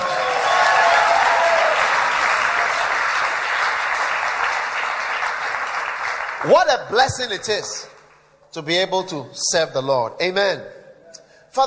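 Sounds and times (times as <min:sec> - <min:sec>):
large crowd applauding during a sermon: 0:00.0 - 0:07.4
speech: 0:06.4 - 0:07.9, 0:08.5 - 0:10.8.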